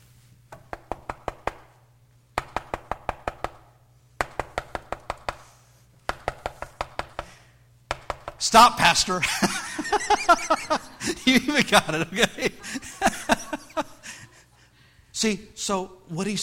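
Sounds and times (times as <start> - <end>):
steady low electrical hum: 0.0 - 16.4
sharp rapid knocking: 0.5 - 1.7, 2.4 - 5.4, 6.1 - 8.4
speech: 8.4 - 12.9, 15.2 - 16.4
laughter: 9.2 - 14.7.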